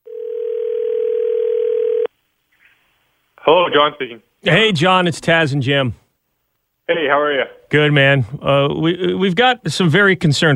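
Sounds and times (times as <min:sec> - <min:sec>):
telephone line ringing with a steady electronic tone: 0:00.0 - 0:02.1
speech: 0:03.5 - 0:06.0, 0:06.9 - 0:10.5.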